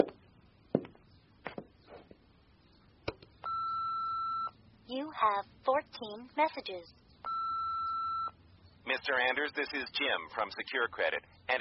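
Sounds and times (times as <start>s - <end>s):
telephone ringing with a steady electronic tone: 3.5s - 4.6s, 7.3s - 8.3s
speech: 5.1s - 7.0s, 8.9s - 11.5s.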